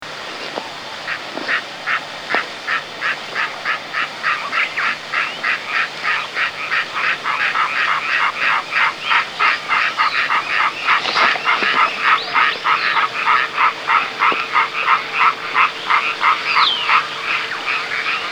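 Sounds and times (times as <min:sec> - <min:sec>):
faint steady hum: 0:00.0 - 0:18.2
frogs croaking: 0:00.0 - 0:18.2.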